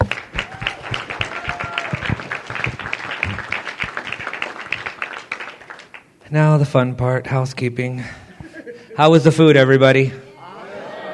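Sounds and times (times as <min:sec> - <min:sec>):
audience applause for scholarship winners: 0:00.0 - 0:06.1
whistles or cheers: 0:00.4 - 0:02.2
speech: 0:06.3 - 0:08.2, 0:09.0 - 0:10.2.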